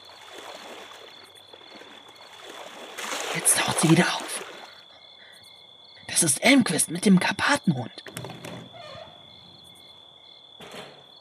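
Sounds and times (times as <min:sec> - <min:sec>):
pool water swishing and lapping as a person slowly slides in: 0:00.0 - 0:05.0
speech: 0:03.4 - 0:04.2, 0:06.2 - 0:08.3.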